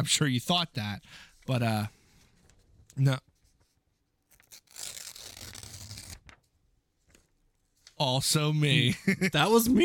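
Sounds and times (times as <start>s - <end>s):
speech: 0.0s - 2.0s, 3.0s - 3.3s, 8.0s - 9.8s
faint paper rustle: 2.2s - 8.0s
paper tearing: 4.3s - 6.4s.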